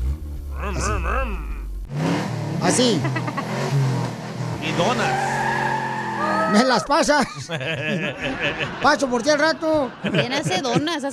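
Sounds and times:
voice imitating a car engine revving in a street drag race: 0.0 - 3.8
laughter: 0.6 - 1.6, 2.8 - 3.6, 6.5 - 11.1
speech: 2.6 - 3.8, 4.7 - 5.4, 6.5 - 11.1.

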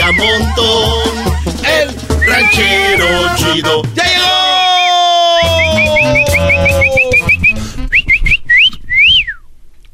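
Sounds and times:
person whistling: 0.0 - 0.8, 2.1 - 3.6, 4.8 - 9.5
laughter: 0.0 - 3.6, 5.4 - 7.8
lively music: 0.0 - 8.2
speech: 0.1 - 4.5.

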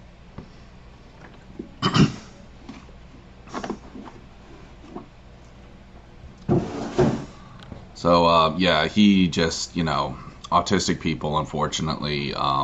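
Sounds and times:
man clearing his throat: 1.8 - 2.3
speech: 8.0 - 12.6.

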